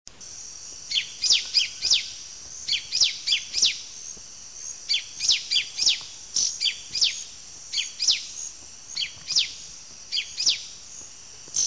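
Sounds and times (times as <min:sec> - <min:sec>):
yellow-green grosbeak nominate subspecies canadensis singing: 0:00.9 - 0:03.8, 0:04.8 - 0:10.7.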